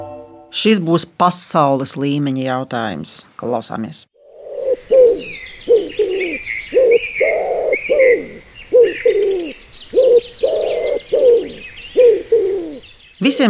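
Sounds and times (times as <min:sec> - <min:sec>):
speech: 0:00.6 - 0:04.1, 0:13.2 - 0:13.4
doves cooing: 0:04.2 - 0:12.9
small birds chirping: 0:04.2 - 0:13.4.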